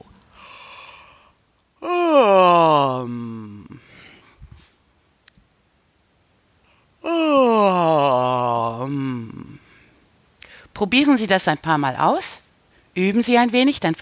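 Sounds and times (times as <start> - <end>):
loud voiced open-mouthed yawn: 0.4 - 4.3, 7.0 - 9.8
speech: 10.8 - 12.4, 13.0 - 14.0.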